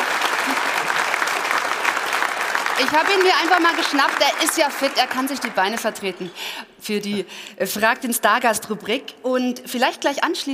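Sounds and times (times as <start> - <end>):
audience applauding a guest: 0.0 - 6.4
speech: 2.8 - 10.5.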